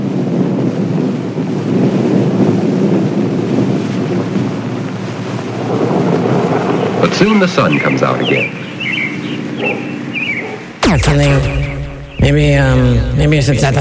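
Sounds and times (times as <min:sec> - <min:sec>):
deep rumbling thunder: 0:00.0 - 0:13.7
stormy roaring wind in a spring thunderstorm: 0:00.0 - 0:13.7
speech: 0:07.0 - 0:08.7, 0:11.0 - 0:11.6, 0:12.2 - 0:13.7.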